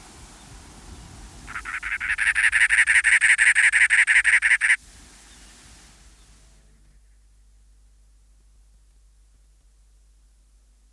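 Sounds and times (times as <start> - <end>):
cactus wren song: 1.4 - 5.5.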